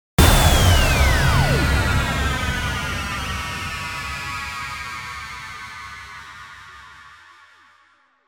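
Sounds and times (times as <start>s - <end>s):
yellow laser blast impact: 0.2s - 6.3s.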